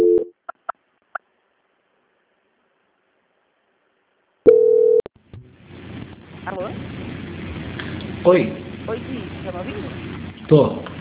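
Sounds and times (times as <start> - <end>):
sustained steady telephone tone: 4.5 - 5.1
low murmur: 5.2 - 10.9
speech: 8.2 - 10.9.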